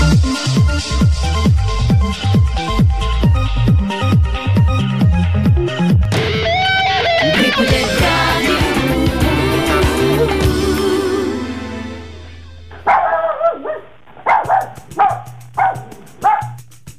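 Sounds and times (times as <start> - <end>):
music: 0.0 - 12.8, 14.4 - 16.9
dog barking: 12.7 - 16.6.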